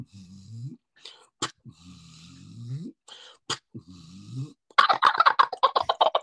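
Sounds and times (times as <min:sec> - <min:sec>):
male wild turkey gobbling during a turkey hunt: 0:04.8 - 0:06.2.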